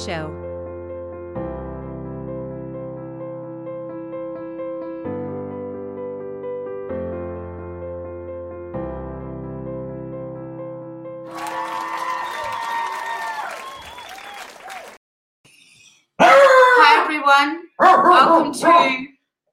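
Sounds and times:
speech: 0.0 - 0.4, 17.4 - 19.1
dog barking: 16.2 - 17.1, 17.7 - 19.1.

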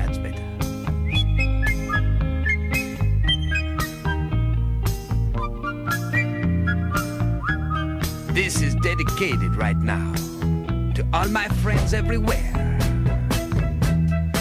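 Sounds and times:
full band backing with steady bass and regular drum hits: 0.0 - 14.3
whistled melody: 0.8 - 4.6, 5.3 - 10.3, 12.9 - 14.3
speech: 8.8 - 10.3, 11.2 - 12.6.

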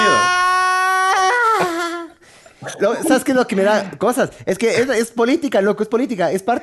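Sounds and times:
man moaning: 0.0 - 3.4
speech: 2.8 - 6.6.

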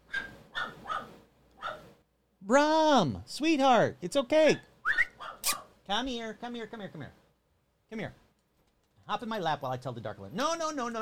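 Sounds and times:
faint dog barking: 0.0 - 2.0, 5.0 - 5.8
speech: 2.5 - 4.7, 5.9 - 7.2, 7.9 - 8.2, 9.1 - 10.9.

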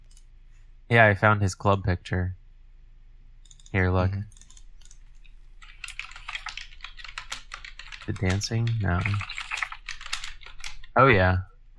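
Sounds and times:
speech: 0.9 - 2.4, 3.7 - 4.4, 8.1 - 9.3, 11.0 - 11.7
fingers typing on a computer keyboard: 3.4 - 11.0.

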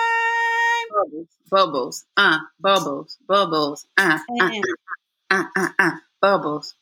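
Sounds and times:
speech: 1.0 - 6.7
man's voice imitating bubbling with throaty gurgling bursts: 2.2 - 3.0, 4.0 - 6.1.

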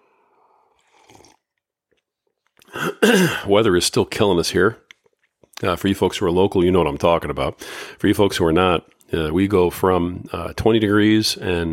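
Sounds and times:
person slurping from a cup: 0.4 - 1.6
swallowing and mouth clicks: 0.7 - 2.8, 4.8 - 5.6
speech: 3.0 - 4.8, 5.6 - 11.7.

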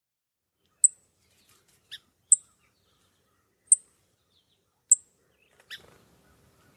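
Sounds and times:
faint chirps: 0.6 - 6.7
song sparrow alarm call with short sharp high chip notes: 0.7 - 1.0, 1.9 - 4.0, 4.9 - 6.7.

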